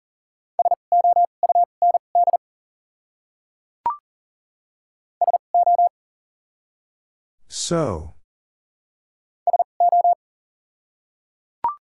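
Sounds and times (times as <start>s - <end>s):
Morse code beeps keyed at 40 words per minute: 0.6s - 2.4s, 5.2s - 5.9s, 9.5s - 10.2s
speech: 7.6s - 8.2s.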